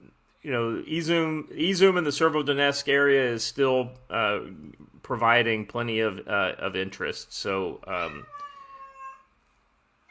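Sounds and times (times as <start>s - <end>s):
speech: 0.4s - 8.5s
cat meowing, locked in a room: 7.9s - 9.3s.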